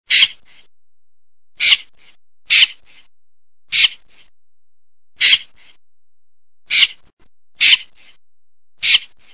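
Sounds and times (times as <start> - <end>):
snipe calling: 0.1 - 0.5, 1.6 - 3.0, 3.7 - 4.1, 5.2 - 5.7, 6.7 - 7.0, 7.6 - 8.1, 8.8 - 9.3.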